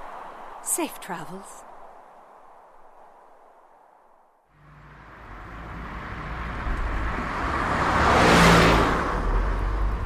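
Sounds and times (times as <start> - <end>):
steady roar of freeway traffic: 0.0 - 3.9, 4.5 - 10.0
speech: 0.8 - 1.7
car driving past on the freeway: 4.5 - 10.0.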